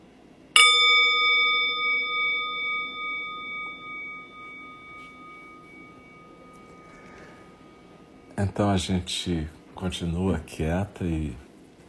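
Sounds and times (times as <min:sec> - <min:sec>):
meditation bell ringing: 0:00.5 - 0:09.4
speech: 0:08.4 - 0:11.4.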